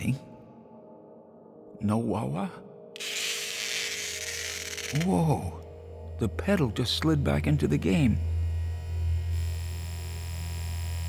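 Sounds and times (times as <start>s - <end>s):
speech: 1.8s - 2.7s, 4.9s - 5.6s, 6.2s - 8.3s
low electrical-sounding hum with faint higher overtones: 4.3s - 11.0s.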